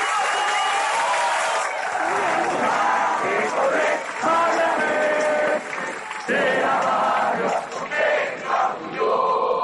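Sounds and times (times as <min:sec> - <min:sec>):
large crowd of protesters clapping and shouting outdoors: 0:00.0 - 0:09.5.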